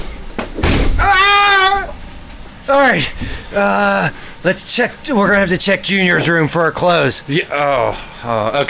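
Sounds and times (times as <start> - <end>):
door being kicked in with a nanotechnology leg: 0.6 - 1.3
high-pitched vocal cry: 1.0 - 2.0
speech: 2.7 - 8.6.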